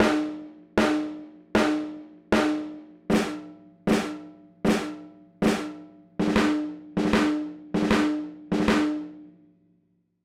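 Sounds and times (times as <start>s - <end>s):
garage rock snare drum hits: 0.0s - 9.1s.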